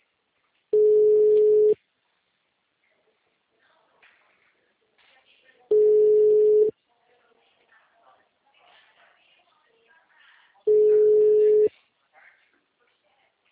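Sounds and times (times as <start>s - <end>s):
faint noise: 0.0s - 13.5s
ringback tone of an unanswered telephone call: 0.8s - 1.8s, 5.7s - 6.7s, 10.7s - 11.7s.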